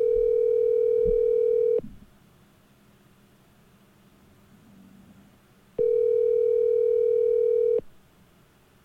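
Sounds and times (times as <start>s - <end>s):
telephone ringback tone: 0.0s - 1.8s, 5.8s - 7.8s.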